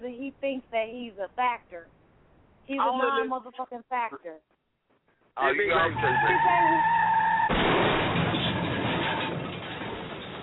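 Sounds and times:
speech: 0:00.8 - 0:02.0, 0:02.6 - 0:04.5, 0:05.4 - 0:07.1
car tires screeching with a wavering squeal: 0:05.4 - 0:10.4
harsh car crash with crunching rumbling noise: 0:05.8 - 0:10.4.

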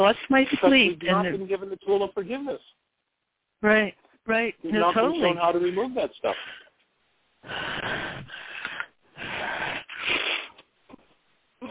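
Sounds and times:
speech: 0:00.0 - 0:02.9, 0:03.6 - 0:06.6, 0:07.4 - 0:08.0
deep deliberate breathing exercise: 0:07.4 - 0:10.6.

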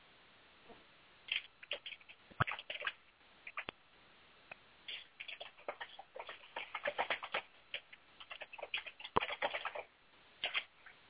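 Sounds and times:
typing on a computer keyboard: 0:01.3 - 0:03.7, 0:04.9 - 0:10.7.

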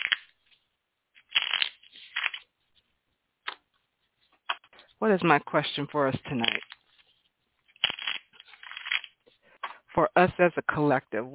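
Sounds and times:
deck of cards shuffled for a reading: 0:00.0 - 0:00.6, 0:01.2 - 0:02.9, 0:06.2 - 0:09.2
speech: 0:05.0 - 0:06.7, 0:10.2 - 0:11.3.

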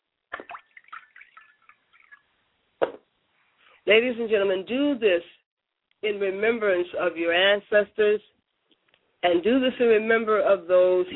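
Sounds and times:
liquid poured out as a ritual libation, dripping: 0:00.3 - 0:02.4
speech: 0:03.9 - 0:05.4, 0:06.0 - 0:08.4, 0:09.2 - 0:11.1.

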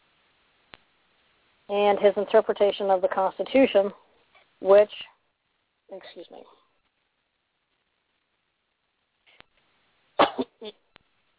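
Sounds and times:
speech: 0:01.7 - 0:04.0, 0:04.6 - 0:05.1, 0:05.9 - 0:06.6
person coughing: 0:10.2 - 0:10.7.

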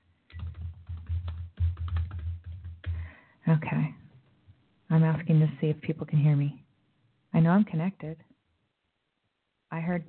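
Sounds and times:
rapid typing on a computer keyboard: 0:00.3 - 0:03.1
speech: 0:03.5 - 0:04.0, 0:04.9 - 0:06.6, 0:07.4 - 0:08.3, 0:09.7 - 0:10.0.

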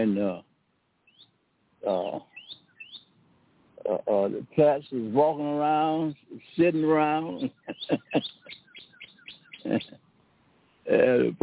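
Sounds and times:
birds chirping outdoors on a fine day in Georgia: 0:00.0 - 0:00.4, 0:01.0 - 0:10.1
speech: 0:00.0 - 0:00.5, 0:01.8 - 0:02.3, 0:03.8 - 0:08.3, 0:09.6 - 0:10.0, 0:10.9 - 0:11.4
laughter: 0:01.9 - 0:02.2, 0:03.9 - 0:08.6, 0:09.6 - 0:10.0.

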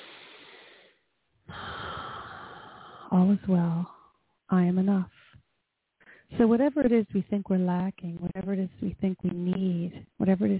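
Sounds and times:
deep breath: 0:00.0 - 0:03.2, 0:06.0 - 0:06.3
speech: 0:03.1 - 0:05.2, 0:06.3 - 0:10.5.

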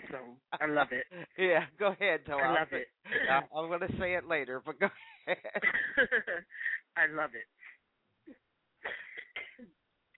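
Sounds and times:
speech: 0:00.1 - 0:07.6
person coughing over a phone line: 0:08.8 - 0:09.7
throat clearing over a phone line: 0:08.8 - 0:09.7.

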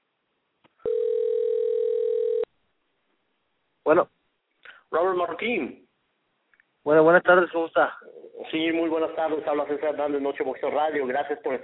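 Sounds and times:
telephone call ringing out while waiting for an answer: 0:00.8 - 0:02.5
speech: 0:03.9 - 0:04.2, 0:04.9 - 0:05.8, 0:06.8 - 0:11.6.

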